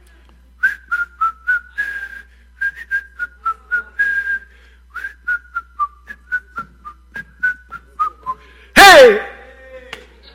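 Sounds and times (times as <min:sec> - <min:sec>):
person whistling a bouncy familiar melody: 0:00.6 - 0:08.4.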